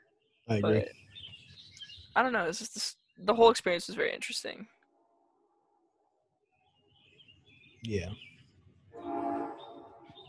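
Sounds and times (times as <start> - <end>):
speech: 0.5 - 1.0, 2.2 - 4.8, 7.8 - 8.3
train horn blaring: 9.0 - 10.2.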